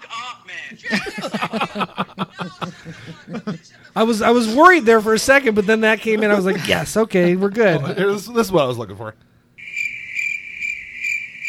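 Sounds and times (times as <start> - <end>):
speech: 0.5 - 1.9, 4.0 - 9.3
laughter: 0.5 - 3.8, 5.4 - 8.2
crickets chirping: 9.6 - 11.4.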